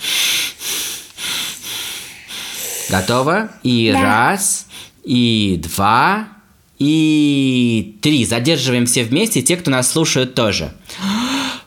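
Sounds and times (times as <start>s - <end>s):
deep forceful breathing before holding breath: 0.0s - 5.0s
speech: 2.9s - 11.1s.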